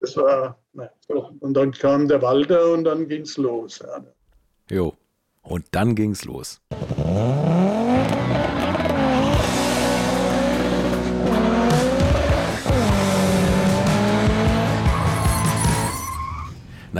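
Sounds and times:
speech: 0.0 - 8.5
Opel Ascona rally car engine revving: 6.7 - 16.1
Opel Ascona rally car tires squealing and skidding: 6.8 - 16.6.

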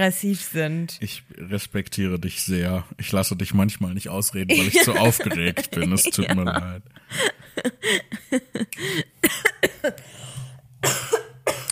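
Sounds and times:
speech: 0.0 - 11.1
laughter: 4.5 - 9.1
person gasping: 8.7 - 10.6
harsh coughing fit: 9.1 - 10.1, 10.8 - 11.7.

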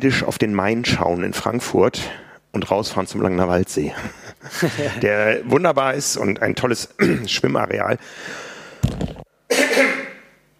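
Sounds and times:
speech: 0.0 - 9.6
laughter: 4.0 - 5.2
person clearing throat with a rough guttural rasp: 7.0 - 7.3, 9.5 - 10.4.

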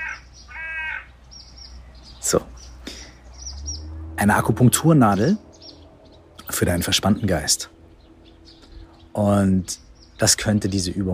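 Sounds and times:
harsh crow-like caws outdoors: 0.0 - 1.2
low steady hum: 1.1 - 11.1
speech: 2.3 - 2.7, 4.2 - 5.4, 6.6 - 7.8, 9.2 - 11.1.

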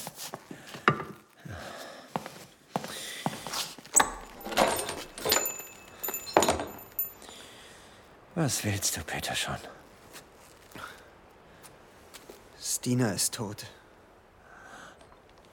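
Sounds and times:
wooden door knocking and creaking open: 3.9 - 7.1
lock clicking and rattling: 3.9 - 7.2
keys jingling: 3.9 - 7.3
speech: 8.4 - 9.8, 12.8 - 13.8.

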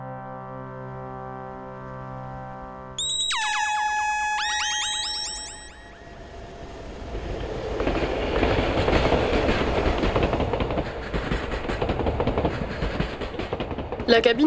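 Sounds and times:
train wagon screech: 3.0 - 7.0
narrow empty train wagon rolling on rails: 7.1 - 14.4.

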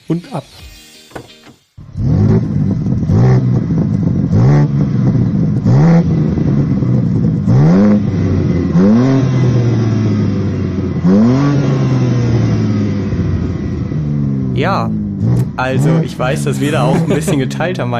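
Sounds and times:
speech: 0.1 - 1.4, 15.6 - 17.9
car engine revving: 1.8 - 17.9
laughter: 15.9 - 17.8.

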